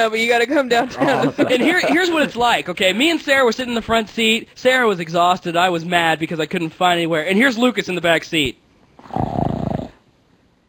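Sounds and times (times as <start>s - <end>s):
speech: 0.0s - 9.5s
laughter: 0.5s - 2.4s
voice imitating loud snoring: 9.0s - 10.0s.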